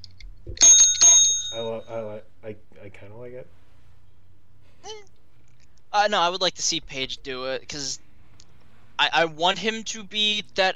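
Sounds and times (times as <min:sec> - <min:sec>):
bright high bell ringing: 0:00.6 - 0:02.0
speech: 0:06.0 - 0:08.0, 0:09.0 - 0:10.7.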